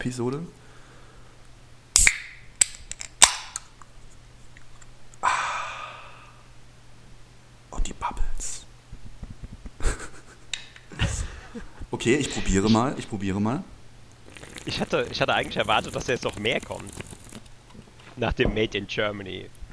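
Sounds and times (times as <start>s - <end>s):
speech: 0.0s - 0.6s, 12.0s - 13.8s, 14.6s - 17.0s, 18.2s - 19.6s
faint steady hum: 0.0s - 19.7s
sharp metallic clicks of frozen drink can being opened: 2.0s - 3.7s
scattered crackles and pops of frozen drink: 2.0s - 3.9s, 14.0s - 18.3s.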